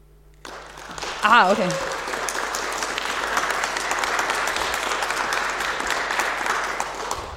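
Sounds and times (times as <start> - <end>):
audience clapping to vote: 0.4 - 7.3
speech: 1.2 - 1.9.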